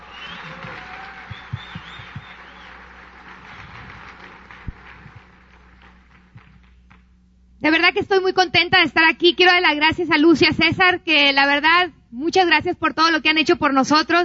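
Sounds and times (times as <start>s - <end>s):
audience applause at a convention: 0.0s - 7.0s
speech: 7.7s - 14.2s.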